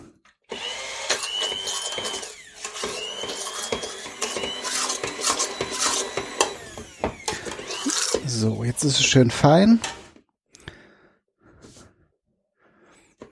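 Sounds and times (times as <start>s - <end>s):
motorized immersion blender puréeing food in a pot: 0.5s - 8.6s
speech: 8.4s - 10.0s.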